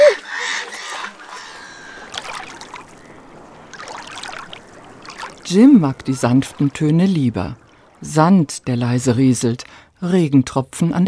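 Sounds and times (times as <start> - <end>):
gulls calling: 0.0 - 8.0
speech: 5.5 - 11.0.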